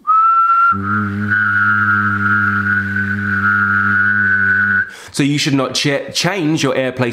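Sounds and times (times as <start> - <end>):
person whistling: 0.0 - 5.0
speech: 0.8 - 1.5, 5.2 - 7.1.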